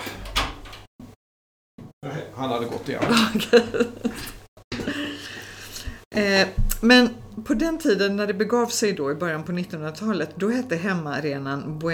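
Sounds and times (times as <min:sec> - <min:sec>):
door swinging open to let a dog in: 0:00.0 - 0:00.9
speech: 0:02.4 - 0:04.4, 0:06.2 - 0:11.9
laughter: 0:02.9 - 0:05.4.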